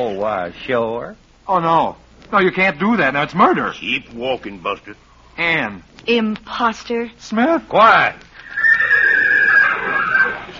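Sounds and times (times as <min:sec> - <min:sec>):
speech: 0:00.0 - 0:08.3
wild horse neighing: 0:08.4 - 0:10.5.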